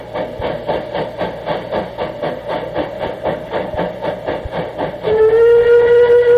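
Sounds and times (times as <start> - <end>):
steam locomotive chuffing: 0.0 - 6.3
acorn-type steam locomotive whistle blasting in tunnel: 5.0 - 6.3.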